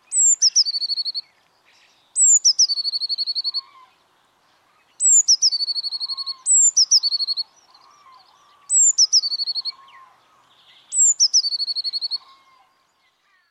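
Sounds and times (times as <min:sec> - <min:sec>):
blue tit calling: 0:00.1 - 0:01.3, 0:02.1 - 0:03.9, 0:05.0 - 0:10.2, 0:10.8 - 0:12.7.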